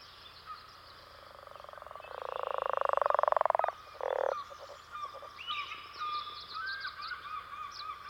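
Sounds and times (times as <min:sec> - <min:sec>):
chorus of insects or other frogs trilling: 0:00.9 - 0:06.2
leopard frog rattling snore-like call: 0:01.1 - 0:05.4.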